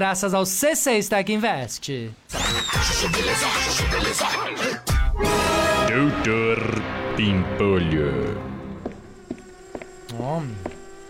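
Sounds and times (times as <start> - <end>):
speech: 0.0 - 8.5, 10.2 - 10.8
drone buzzing overhead: 5.3 - 11.0.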